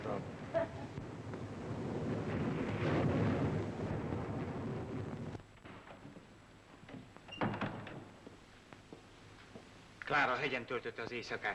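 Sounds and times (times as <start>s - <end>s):
speech: 0.0s - 0.8s, 10.1s - 11.5s
rolling thunder during a night storm: 0.0s - 6.2s.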